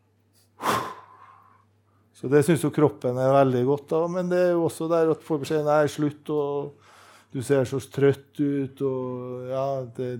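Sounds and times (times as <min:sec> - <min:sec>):
yawn: 0:00.6 - 0:01.4
speech: 0:02.2 - 0:10.1.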